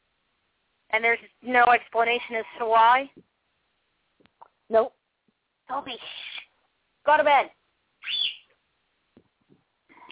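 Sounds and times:
speech: 0.9 - 3.3, 4.7 - 5.0, 5.7 - 6.2, 7.0 - 7.6
pet bird squawking harshly: 6.0 - 6.5, 8.0 - 8.5
faint pet bird chirps: 8.0 - 8.5.

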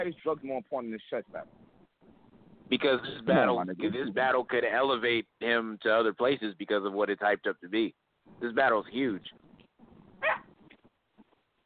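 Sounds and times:
speech: 0.0 - 1.6, 2.7 - 9.4
pit bull puppy barking: 10.2 - 10.5.

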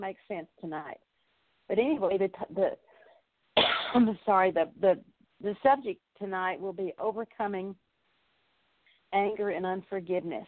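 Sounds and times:
speech: 0.0 - 1.1, 1.7 - 2.9, 3.9 - 7.8, 9.1 - 10.4
person with a cold coughing: 3.6 - 4.1.

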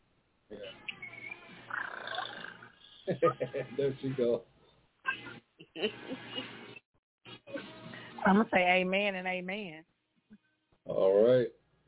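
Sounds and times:
speech: 0.5 - 0.9, 3.1 - 4.5, 5.8 - 6.5, 8.2 - 9.9, 10.9 - 11.6
woman imitating a cat purring: 1.7 - 2.6
laughter: 3.1 - 4.3, 5.1 - 6.6.

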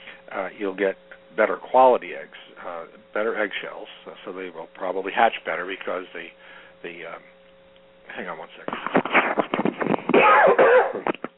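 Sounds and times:
speech: 0.4 - 7.4, 8.1 - 9.4
man with a bug in his throat clearing throat: 10.1 - 11.3
man with a bug in his throat coughing: 10.1 - 11.3.

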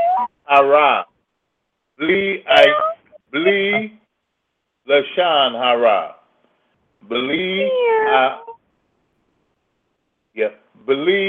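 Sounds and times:
speech: 0.5 - 1.1, 2.0 - 4.0, 4.9 - 6.2, 7.0 - 8.5, 10.4 - 11.2
cat meowing: 2.5 - 3.1, 7.6 - 8.6.

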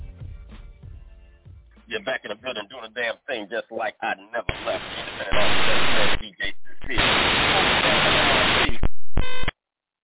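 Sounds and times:
speech: 1.9 - 7.8
loud harsh static hiss at the end of a track: 4.4 - 9.5
brief buzzy electronic tone: 4.5 - 9.5.

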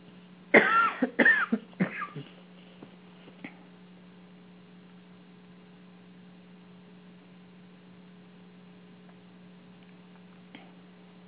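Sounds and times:
person coughing roughly: 0.5 - 2.4.

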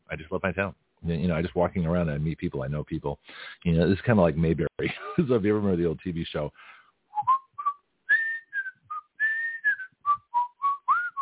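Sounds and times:
speech: 0.1 - 7.3
person whistling a tune: 7.1 - 11.2.

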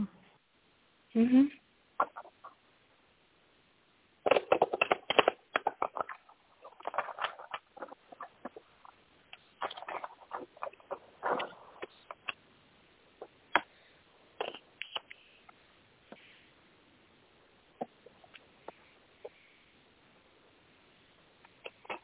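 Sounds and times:
speech: 1.2 - 2.1
deck of cards being shuffled: 4.2 - 12.4, 14.4 - 15.2.

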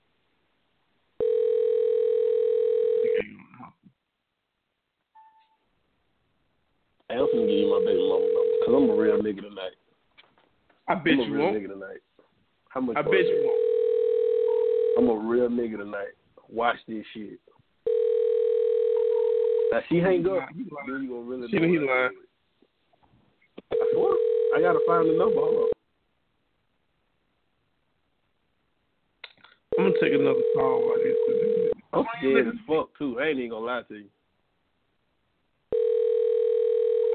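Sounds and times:
phone ringback tone on the line: 1.2 - 3.2, 7.2 - 9.3, 13.1 - 15.1, 17.9 - 19.8, 23.7 - 25.8, 29.7 - 31.8, 35.7 - 37.1
people talking: 3.1 - 3.8, 7.1 - 9.8, 10.9 - 12.0, 12.7 - 13.6, 14.5 - 17.4, 19.7 - 22.2, 23.7 - 25.8, 29.8 - 34.1.

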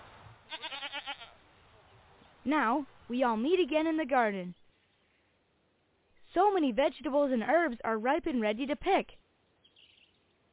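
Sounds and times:
goat bleating: 0.5 - 1.4
speech: 2.4 - 4.6, 6.4 - 9.2.

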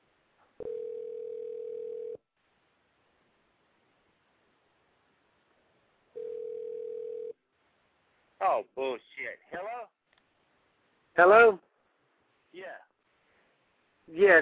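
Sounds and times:
telephone dial tone while placing a call: 0.6 - 2.2, 6.2 - 7.4
speech: 8.5 - 9.9, 11.2 - 11.6, 14.1 - 14.3.

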